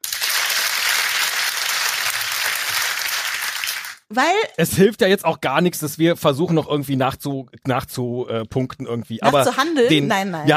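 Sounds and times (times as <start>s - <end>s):
canned applause sound effect from a button: 0.0s - 4.1s
speech: 4.1s - 10.5s.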